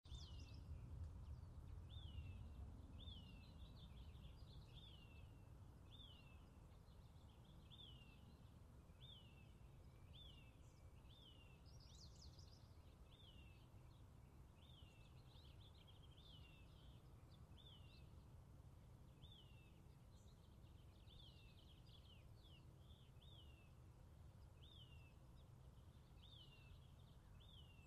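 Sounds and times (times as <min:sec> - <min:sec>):
birds chirping in a suburban yard: 0:00.1 - 0:18.4, 0:19.0 - 0:27.8.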